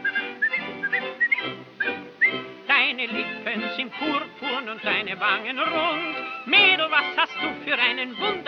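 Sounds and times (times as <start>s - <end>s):
person whistling a cheerful tune: 0.0s - 2.4s
speech: 3.0s - 8.4s.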